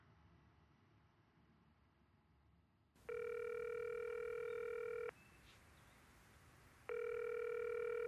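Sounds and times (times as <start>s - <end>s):
electronic telephone tone after call line drops: 3.1s - 5.1s, 6.9s - 8.0s.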